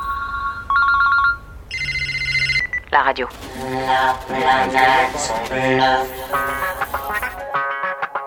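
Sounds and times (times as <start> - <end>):
telephone ringing with electronic warble: 0.0 - 8.0
speech: 2.9 - 6.9.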